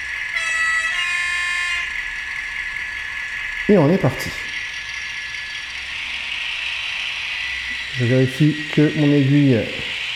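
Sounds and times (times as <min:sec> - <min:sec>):
locomotive horn blast with a bright buzzy chord: 0:00.3 - 0:02.4
speech: 0:03.7 - 0:04.5, 0:08.0 - 0:10.0.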